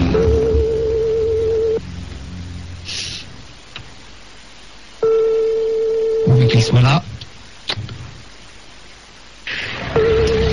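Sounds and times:
telephone ringing on the line while a call is placed: 0:00.0 - 0:01.8, 0:05.0 - 0:06.7, 0:10.0 - 0:10.5.

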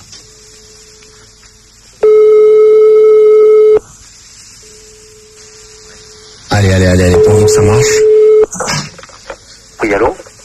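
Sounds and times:
telephone ringback tone during a call: 0:02.0 - 0:03.8, 0:07.0 - 0:08.5
speech: 0:06.7 - 0:08.2, 0:09.8 - 0:10.2.

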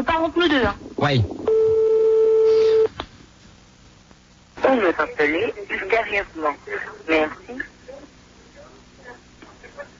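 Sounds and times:
speech: 0:00.2 - 0:01.4, 0:04.7 - 0:07.8
long steady telephone ringback tone while a call waits to be answered: 0:01.5 - 0:02.9.

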